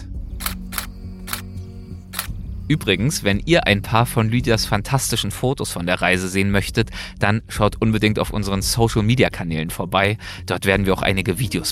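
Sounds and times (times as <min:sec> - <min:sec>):
camera shutter clicks: 0:00.4 - 0:02.4
speech: 0:02.7 - 0:11.7.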